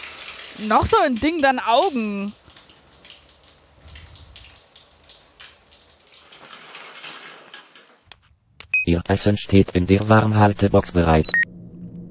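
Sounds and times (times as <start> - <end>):
warm water running from a tap: 0.0 - 7.8
speech: 0.6 - 2.4, 8.9 - 11.5.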